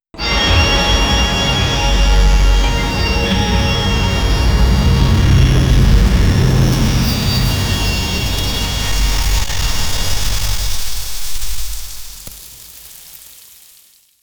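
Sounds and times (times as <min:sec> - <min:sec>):
orchestral music: 0:00.2 - 0:09.5
scary lightning thunder: 0:00.2 - 0:11.9.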